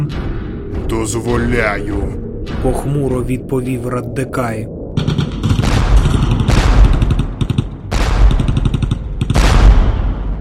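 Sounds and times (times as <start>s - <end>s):
speech: 0.9s - 5.2s
heavy-caliber bolter gunfire bursts: 5.0s - 10.2s.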